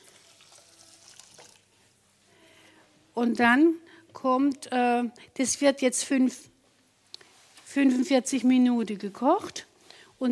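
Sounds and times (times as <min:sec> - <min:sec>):
boiling water poured over washed millet: 0:00.0 - 0:01.8
speech: 0:03.2 - 0:06.5, 0:07.7 - 0:10.2.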